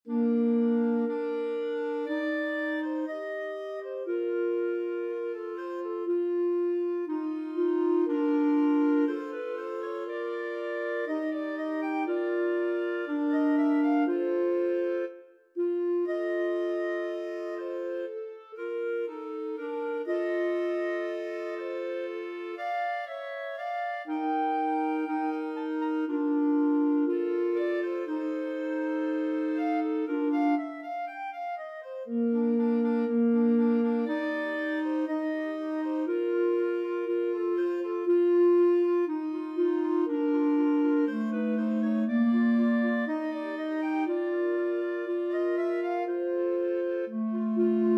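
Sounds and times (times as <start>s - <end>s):
clarinet trio playing a romance: 0.0s - 47.9s.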